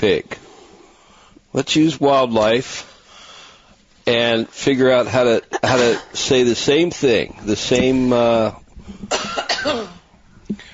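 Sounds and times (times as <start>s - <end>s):
speech: 0.0s - 0.4s, 1.5s - 2.9s, 4.0s - 10.6s
person coughing with an early-morning throat: 5.6s - 6.2s, 9.1s - 10.0s.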